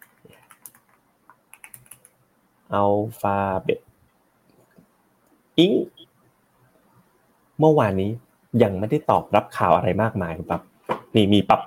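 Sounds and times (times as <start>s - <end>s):
typing a search on a computer keyboard: 0.0s - 2.2s
speech: 2.7s - 3.9s, 5.6s - 5.9s, 7.6s - 11.6s.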